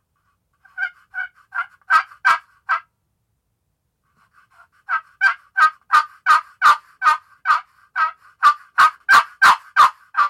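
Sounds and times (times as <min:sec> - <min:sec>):
turkey yelps on a catalpa wood turkey call: 0:00.8 - 0:02.8, 0:04.9 - 0:10.2.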